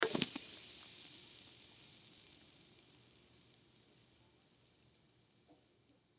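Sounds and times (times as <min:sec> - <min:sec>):
Sterno being extinguished: 0:00.0 - 0:00.5.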